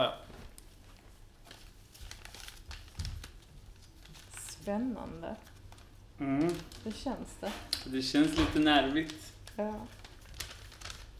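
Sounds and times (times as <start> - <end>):
gift package paper crinkling while being unwrapped: 0.3 - 11.1
speech: 4.7 - 5.5, 6.2 - 10.0.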